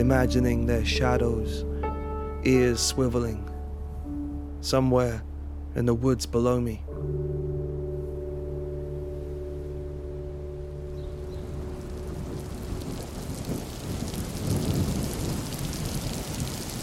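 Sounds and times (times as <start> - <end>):
speech: 0.0 - 1.7, 2.4 - 3.5, 4.6 - 7.2
low droning hum: 3.6 - 13.0
deep thunder rumbles: 10.7 - 16.8
steady rain hissing in a thunderstorm: 10.7 - 16.8.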